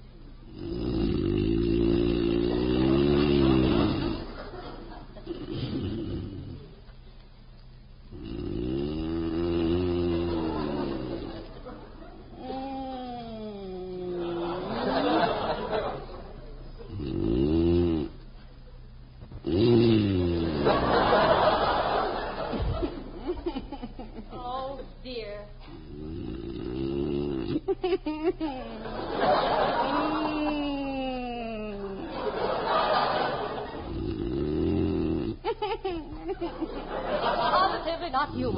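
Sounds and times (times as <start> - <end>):
man snoring loudly in bed: 0.5 - 4.4, 5.2 - 6.7, 8.1 - 11.5, 12.4 - 15.1, 16.9 - 18.2, 19.4 - 21.7, 25.6 - 27.8, 33.8 - 35.5
laughter: 3.2 - 5.7, 10.2 - 12.7, 13.8 - 16.6, 20.4 - 24.9, 27.6 - 34.0, 35.4 - 38.5.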